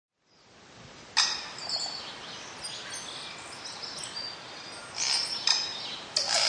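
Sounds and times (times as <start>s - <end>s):
background hiss: 0.2s - 6.4s
tui giving loud clicks and high squeaky notes in Northland bush New Zealand: 5.0s - 6.4s.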